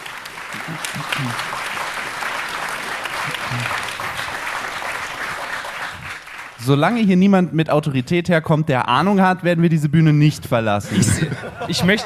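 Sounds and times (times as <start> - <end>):
audience clapping at a stage event: 0.0 - 7.1
laughter: 0.5 - 1.6, 10.8 - 12.0
speech: 0.7 - 1.8, 6.6 - 12.0.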